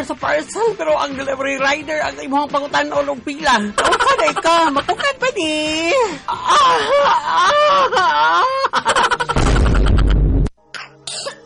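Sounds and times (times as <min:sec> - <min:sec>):
speech: 0:00.0 - 0:09.3
laughter: 0:03.8 - 0:05.2, 0:06.6 - 0:10.1
child coughing harshly with congested hacking: 0:10.8 - 0:11.4.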